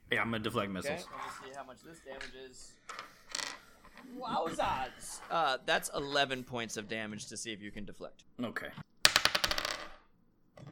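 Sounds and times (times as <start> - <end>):
speech: 0.2 - 3.2, 4.0 - 8.9
dice rattling across a hard table: 2.9 - 4.0, 9.1 - 10.1.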